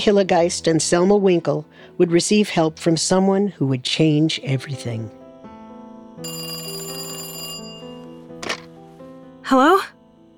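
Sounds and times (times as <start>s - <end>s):
speech: 0.0s - 5.2s, 9.5s - 10.0s
telephone ringing with a metallic bell trill: 6.2s - 8.6s.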